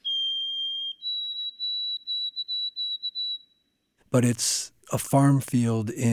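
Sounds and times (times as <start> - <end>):
white-throated sparrow singing in a farm field in October: 0.0 - 3.6
speech: 4.1 - 6.1.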